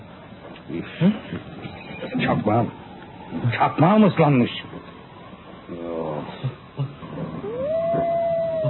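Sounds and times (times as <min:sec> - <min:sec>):
speech: 0:00.7 - 0:01.6, 0:02.2 - 0:04.7
wolf howling: 0:07.1 - 0:08.6.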